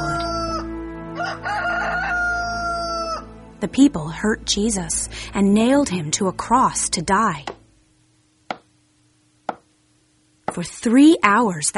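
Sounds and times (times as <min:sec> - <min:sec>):
rooster crowing: 0:00.0 - 0:03.4
low drone: 0:00.0 - 0:08.1
speech: 0:03.6 - 0:07.6, 0:10.6 - 0:11.7.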